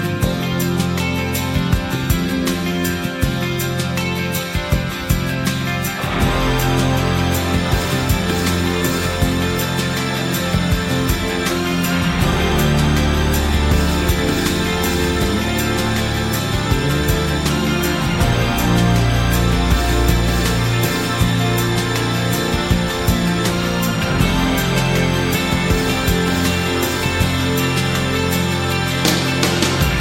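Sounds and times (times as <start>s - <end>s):
instrumental music: 0.0s - 29.9s.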